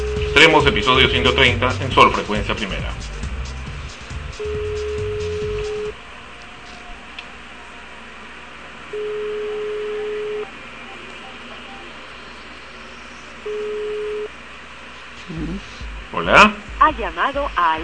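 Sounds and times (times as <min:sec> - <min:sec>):
telephone ringback tone of a call being placed: 0:00.0 - 0:01.6, 0:04.4 - 0:06.0, 0:08.9 - 0:12.0, 0:13.4 - 0:14.3
speech: 0:00.4 - 0:03.1, 0:17.2 - 0:17.8.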